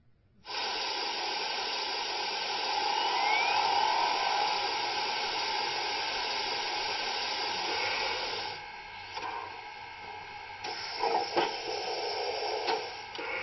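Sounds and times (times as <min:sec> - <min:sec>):
steam locomotive being steamed up with hissing steam: 0:00.5 - 0:08.6, 0:10.6 - 0:13.3
faint rising whistle-like tone: 0:02.4 - 0:08.2.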